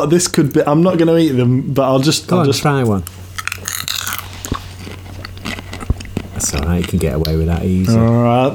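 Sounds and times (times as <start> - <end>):
speech: 0.0 - 4.1, 6.4 - 8.5
low hum: 0.0 - 8.5
popcorn being chewed: 2.9 - 8.0.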